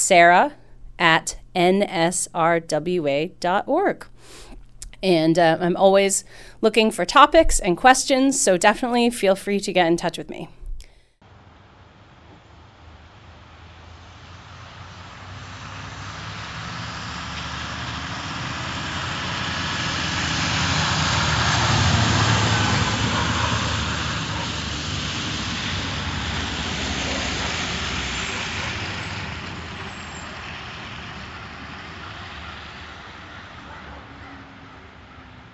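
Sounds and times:
speech: 0.1 - 10.6
snow plow and salt truck engine drone on a winter road in Massachusetts: 11.4 - 35.5.

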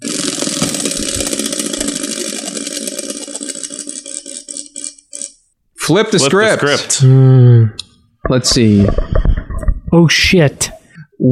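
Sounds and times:
prize wheel clicker ticking as the wheel spins: 0.0 - 5.4
speech: 5.9 - 9.2, 9.9 - 11.3.

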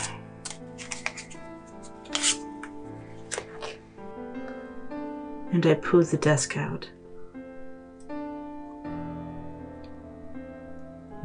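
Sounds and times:
cards shuffling: 0.0 - 3.8
speech: 5.5 - 7.0.

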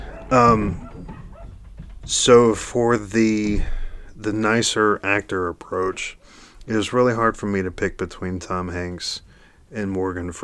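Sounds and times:
dog barking in a house: 0.0 - 1.6
speech: 0.3 - 0.9, 2.1 - 10.4.

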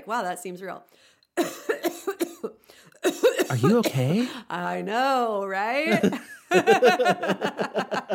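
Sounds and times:
speech: 0.0 - 8.1
person giving a deliberate fake cough: 1.4 - 4.4
laughter: 5.8 - 8.1.

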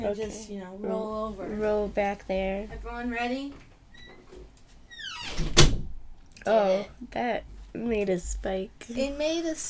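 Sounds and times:
speech: 0.0 - 3.7, 6.4 - 9.6
door hinge creaking: 3.9 - 5.9
door shutting with a thud and latch click: 5.2 - 5.9.

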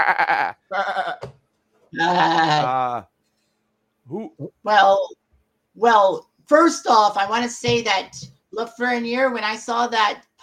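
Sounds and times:
human voice imitating a goat's bleat: 0.0 - 1.3, 1.9 - 3.0
speech: 0.0 - 3.1, 4.1 - 5.2, 5.8 - 10.4.

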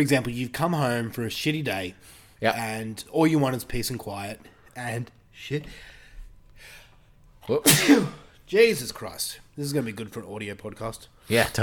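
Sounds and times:
speech: 0.0 - 5.9, 7.5 - 11.6
person sneezing: 7.6 - 8.3.

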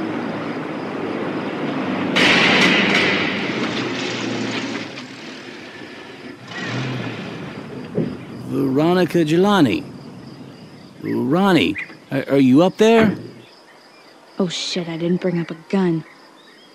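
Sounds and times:
truck engine rumbling: 0.0 - 13.5
speech: 8.6 - 9.9, 11.0 - 13.2, 14.4 - 16.1.

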